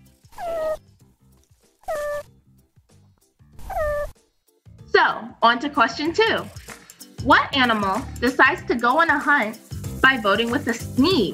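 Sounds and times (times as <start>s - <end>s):
meerkat move call: 0.3s - 0.8s, 1.8s - 2.3s, 3.6s - 4.1s
speech: 5.0s - 6.6s, 7.2s - 11.3s.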